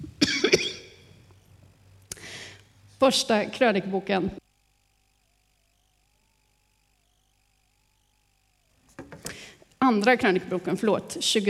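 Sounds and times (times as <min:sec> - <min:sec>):
person coughing: 0:00.2 - 0:01.0
speech: 0:03.0 - 0:04.4, 0:09.9 - 0:11.4.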